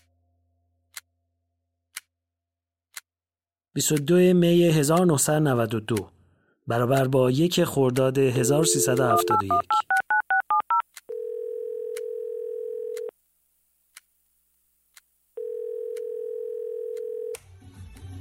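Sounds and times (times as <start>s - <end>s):
speech: 3.8s - 9.9s
touch-tone dialing beeps from a call to Tehran: 8.4s - 10.8s
long steady telephone ringing tones: 8.4s - 13.1s, 15.4s - 17.4s.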